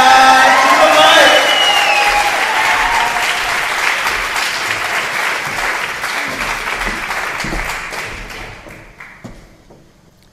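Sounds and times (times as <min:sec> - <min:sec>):
crowd cheers and whoops: 0:00.0 - 0:03.7
crowd applause: 0:00.0 - 0:09.2.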